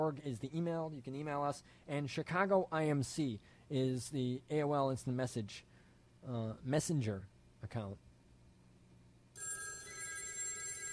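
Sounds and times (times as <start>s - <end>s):
speech: 0.0s - 8.0s
telephone ringing with an electronic tone on a radio call-in line: 9.4s - 10.9s.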